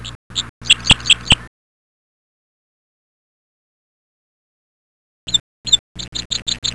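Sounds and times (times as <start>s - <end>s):
chirps: 0.0s - 1.5s, 5.3s - 6.7s.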